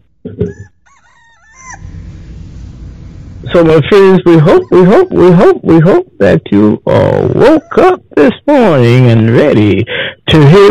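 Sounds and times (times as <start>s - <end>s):
steady noise: 0.0s - 10.6s
rooster crowing: 0.5s - 3.3s, 4.4s - 5.4s
speech: 3.5s - 10.6s.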